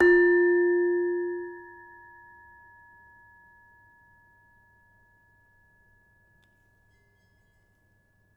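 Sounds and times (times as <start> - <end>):
demung gamelan metallophone notes: 0.0 - 3.7.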